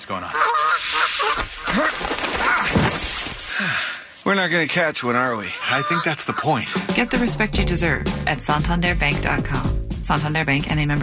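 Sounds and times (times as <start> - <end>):
speech: 0.0 - 0.6, 4.3 - 11.0
wild geese honking: 0.0 - 1.9, 5.0 - 7.6
dense steady wash of outdoor noise: 0.0 - 8.2.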